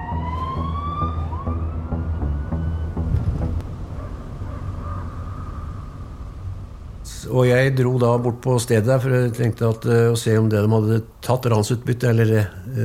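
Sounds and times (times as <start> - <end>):
police car sirens during a car chase through forested valleys in Norway: 0.0 - 6.2
low steady rumble of police car engines: 0.0 - 12.2
speech: 7.3 - 12.8.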